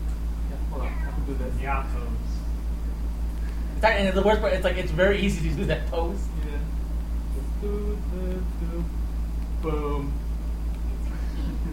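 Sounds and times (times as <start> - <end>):
steady low hum: 0.0 - 11.7
cat meowing: 0.8 - 1.3
speech: 1.3 - 2.4, 3.8 - 6.7, 7.4 - 9.0, 9.6 - 10.2.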